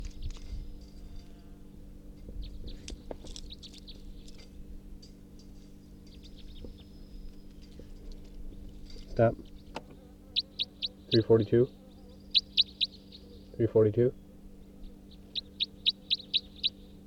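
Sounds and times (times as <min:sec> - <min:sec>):
low hum: 0:00.0 - 0:17.0
bird calling with short high chirps: 0:06.0 - 0:07.7, 0:09.4 - 0:17.0
speech: 0:09.2 - 0:09.5, 0:11.1 - 0:11.8, 0:13.6 - 0:14.2.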